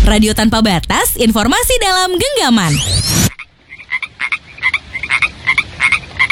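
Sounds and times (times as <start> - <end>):
speech: 0.1 - 3.4
frogs croaking in short rasping pulses: 3.3 - 6.3.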